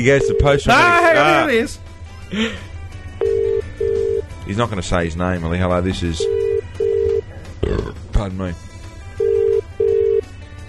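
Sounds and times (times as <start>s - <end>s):
speech: 0.0s - 3.3s, 4.5s - 6.4s, 7.6s - 8.6s
low hum: 0.0s - 10.4s
telephone ringback tone on an outgoing call: 3.2s - 4.3s, 6.2s - 7.3s, 9.2s - 10.3s.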